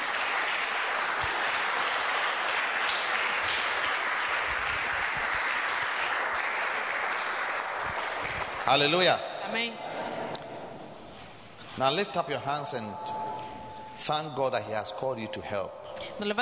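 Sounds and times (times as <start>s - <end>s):
large standing crowd applauding: 0.0s - 9.2s
speech: 8.7s - 9.8s, 11.8s - 13.4s, 14.0s - 16.4s.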